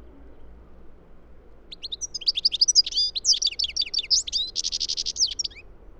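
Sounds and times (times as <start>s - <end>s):
European goldfinch Carduelis carduelis singing chattering high notes: 1.7s - 5.6s.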